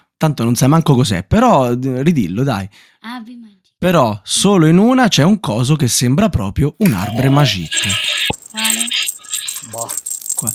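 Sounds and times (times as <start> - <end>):
speech: 0.2 - 8.8, 9.7 - 10.5
small bells jingling: 7.0 - 10.5.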